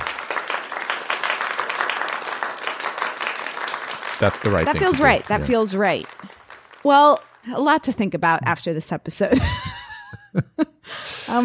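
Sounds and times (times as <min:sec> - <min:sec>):
small group hand clapping: 0:00.0 - 0:08.0
laughter: 0:04.2 - 0:05.6, 0:09.3 - 0:10.8
speech: 0:04.2 - 0:06.1, 0:06.8 - 0:09.7.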